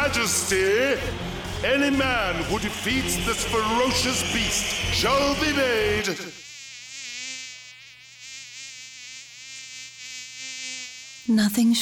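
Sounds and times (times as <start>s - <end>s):
speech: 0.2s - 6.4s, 11.3s - 11.8s
mosquito whine while hovering: 3.0s - 11.8s.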